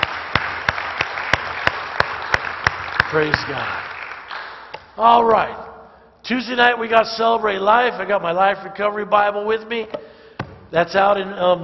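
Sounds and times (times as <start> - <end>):
hands clapping at a church service: 0.0 - 5.0
speech: 3.1 - 3.8, 5.0 - 10.1, 10.7 - 11.6.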